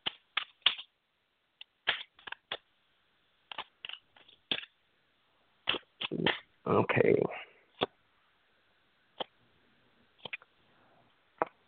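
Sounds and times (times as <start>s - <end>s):
tarot cards being shuffled: 0.0s - 0.9s, 1.7s - 2.7s, 3.5s - 4.8s, 5.6s - 6.5s, 10.2s - 10.5s
speech: 6.1s - 7.5s.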